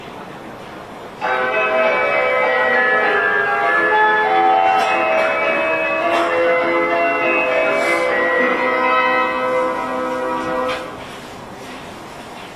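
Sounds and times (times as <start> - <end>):
train station platform departure melody: 1.2 - 10.7.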